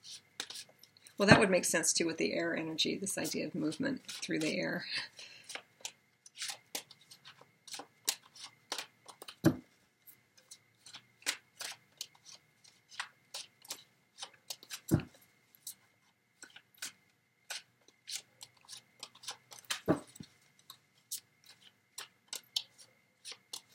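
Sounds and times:
speech: 1.2s - 5.3s
tarot cards being shuffled and drawn during a reading: 5.4s - 9.6s, 10.4s - 15.8s, 16.4s - 20.3s, 21.1s - 23.7s.

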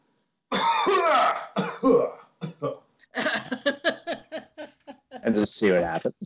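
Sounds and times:
person coughing loudly and deliberately: 0.5s - 3.8s
speech: 1.8s - 2.8s, 5.3s - 6.2s
laughter: 3.2s - 6.2s.

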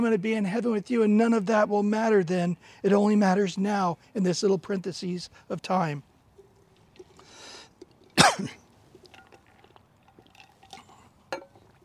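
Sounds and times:
speech: 0.0s - 6.1s, 8.4s - 8.6s
person coughing from a dry spot in the throat: 8.2s - 8.6s.

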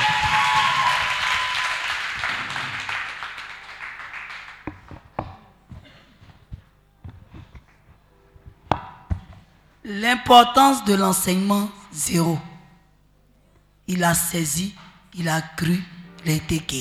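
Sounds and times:
church congregation applauding in praise: 0.0s - 5.2s
speech: 9.9s - 12.5s, 13.9s - 16.7s.

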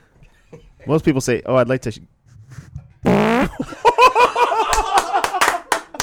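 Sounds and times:
speech: 0.5s - 2.2s
fart into the microphone: 2.5s - 3.6s
people laughing and snickering: 3.4s - 6.0s.

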